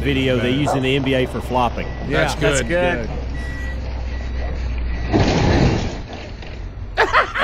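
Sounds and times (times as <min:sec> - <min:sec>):
speech: 0:00.0 - 0:03.6
delivery truck engine rumbling low and steady: 0:00.0 - 0:07.4
delivery truck backing into a fence with a crunching crash: 0:04.9 - 0:06.7.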